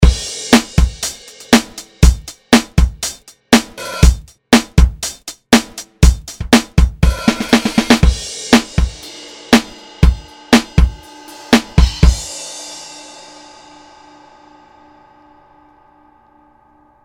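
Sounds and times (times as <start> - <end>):
funky music on vinyl: 0.0 - 12.3.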